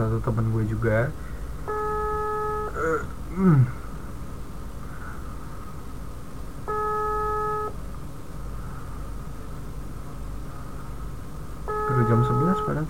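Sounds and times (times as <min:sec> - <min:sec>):
speech: 0:00.2 - 0:01.8, 0:02.8 - 0:03.8
phone ringback tone of an outgoing call: 0:01.7 - 0:02.8, 0:06.7 - 0:07.7, 0:11.7 - 0:12.8.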